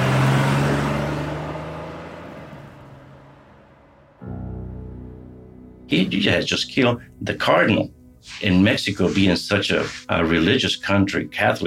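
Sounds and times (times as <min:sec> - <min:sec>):
car engine roaring as the car speeds off: 0:00.0 - 0:04.2
speech: 0:05.9 - 0:11.6.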